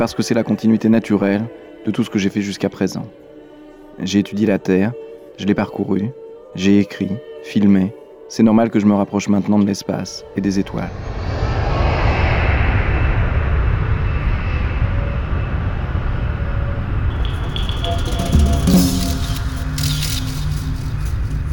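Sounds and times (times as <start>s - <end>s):
speech: 0.0s - 3.2s, 4.0s - 11.3s
airplane engine at full power on a zero-gravity flight: 10.6s - 21.5s.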